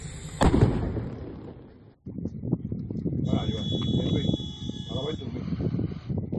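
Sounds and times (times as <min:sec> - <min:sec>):
explosion blast from burning fishing boat: 0:00.0 - 0:01.9
burning fishing boat crackling and popping: 0:00.0 - 0:03.2
thin high whistle: 0:03.3 - 0:05.4.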